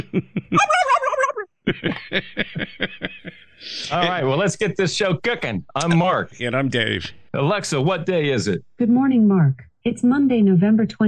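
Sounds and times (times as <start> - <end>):
speech: 0.0 - 1.0, 1.7 - 11.0
turkey sharp clucking pulses: 0.0 - 1.4
laughter: 0.0 - 7.5
turkey gobble sound effect: 0.5 - 1.4.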